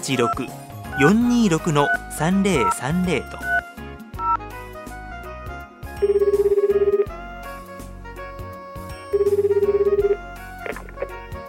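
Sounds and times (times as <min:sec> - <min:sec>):
speech: 0:00.0 - 0:03.5
quiet music: 0:00.0 - 0:11.4
buzzing warbling telephone ringback tone of an outgoing call: 0:06.0 - 0:07.2, 0:09.1 - 0:10.2.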